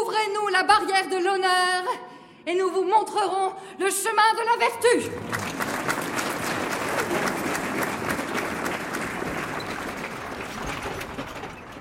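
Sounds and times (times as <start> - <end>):
speech: 0.5 - 5.4
deputies in the National Assembly applauding a speech: 5.0 - 11.8.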